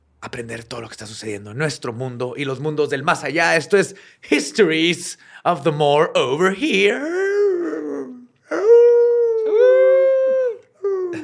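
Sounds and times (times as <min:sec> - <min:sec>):
speech: 0:00.3 - 0:07.3
person imitating a wolf howl: 0:07.0 - 0:11.2.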